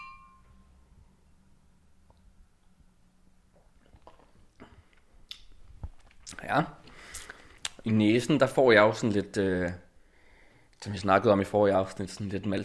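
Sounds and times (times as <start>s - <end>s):
faint glass clink in a toast: 0.0s - 0.7s
soft wet mouth sounds tasting beer: 3.5s - 5.6s
speech: 6.4s - 6.8s, 7.8s - 9.8s, 10.8s - 12.6s.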